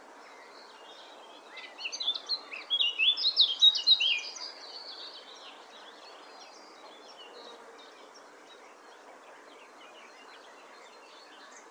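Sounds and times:
Eurasian blackcap singing: 0:01.5 - 0:04.6.

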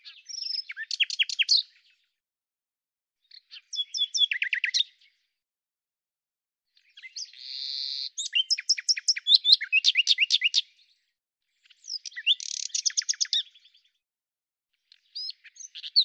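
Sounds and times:
common nightingale song: 0:00.0 - 0:02.2, 0:03.2 - 0:05.3, 0:06.8 - 0:14.0, 0:14.9 - 0:16.0.

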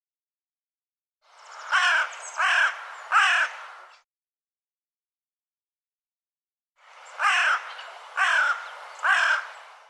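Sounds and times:
bird calling in raspy caws: 0:01.4 - 0:04.0, 0:07.1 - 0:09.7.

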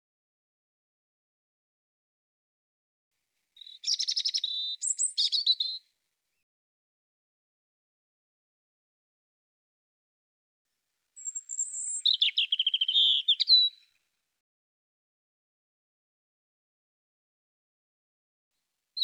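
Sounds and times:
European robin song: 0:03.6 - 0:06.4, 0:11.2 - 0:14.0.

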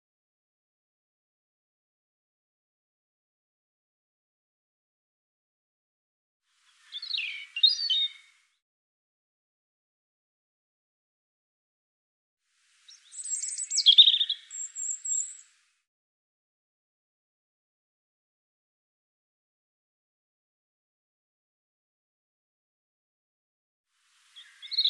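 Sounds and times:
European robin singing: 0:06.7 - 0:08.5, 0:12.9 - 0:15.5, 0:24.3 - 0:24.8.

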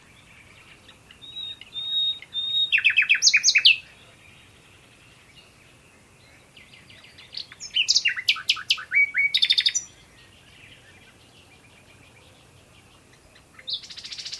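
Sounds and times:
bird chirping: 0:00.0 - 0:14.3
bird whistled notes: 0:01.2 - 0:03.8, 0:07.6 - 0:09.9.

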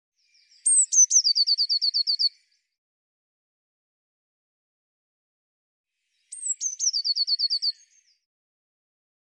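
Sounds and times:
Eurasian blue tit song: 0:00.2 - 0:02.7, 0:06.0 - 0:08.3.

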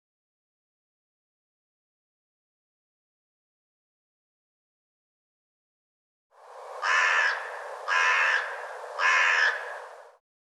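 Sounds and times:
bird giving rough hoarse cawing calls: 0:06.8 - 0:10.0.

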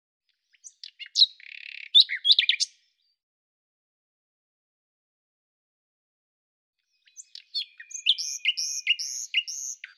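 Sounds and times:
common nightingale song: 0:00.3 - 0:03.2, 0:06.8 - 0:09.9.

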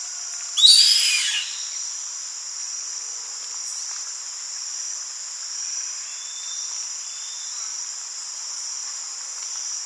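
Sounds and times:
steady high background hiss: 0:00.0 - 0:09.8
bird giving a harsh hissing screech: 0:00.6 - 0:01.6.

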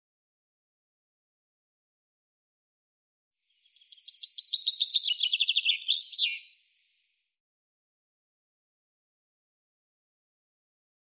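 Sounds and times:
common chaffinch song: 0:03.4 - 0:07.3.

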